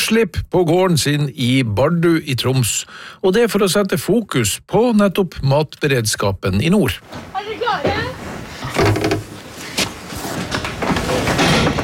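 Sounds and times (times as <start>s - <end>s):
speech: 0.1s - 8.1s
heavy barn door sliding open on a farm in Bardu, Troms, Norway: 7.0s - 11.8s.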